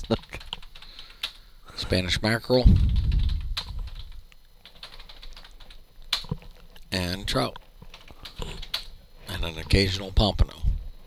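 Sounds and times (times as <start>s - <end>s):
typing on a computer keyboard: 0.0s - 1.4s, 2.8s - 6.5s
speech: 1.9s - 2.9s, 7.3s - 7.6s, 9.4s - 10.6s.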